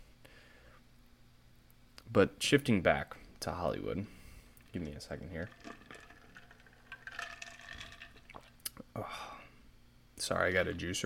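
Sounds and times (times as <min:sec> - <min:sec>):
speech: 0:02.1 - 0:05.9, 0:09.0 - 0:09.3, 0:10.2 - 0:11.0
homemade watermelon juice with sparkling water poured into a glass: 0:04.6 - 0:08.7.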